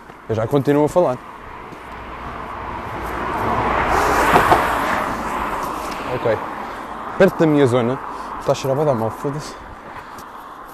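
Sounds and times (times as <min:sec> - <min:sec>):
speech: 0:00.3 - 0:01.3, 0:06.1 - 0:06.5, 0:07.2 - 0:09.6
car driving past: 0:01.3 - 0:07.2.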